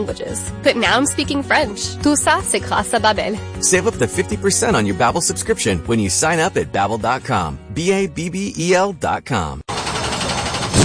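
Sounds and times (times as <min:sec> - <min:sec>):
speech: 0:00.0 - 0:09.7
race car engine at full throttle on a speedway track: 0:09.7 - 0:10.8.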